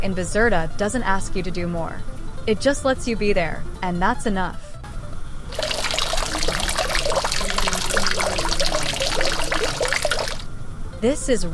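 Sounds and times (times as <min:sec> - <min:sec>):
speech: 0:00.0 - 0:04.7, 0:11.0 - 0:11.5
harbor water lapping and trickling: 0:05.5 - 0:10.5.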